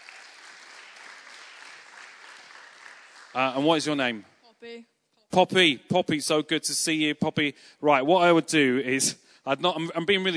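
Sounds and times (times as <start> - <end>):
crowd applauding a volunteer: 0.0 - 4.0
speech: 3.3 - 10.3.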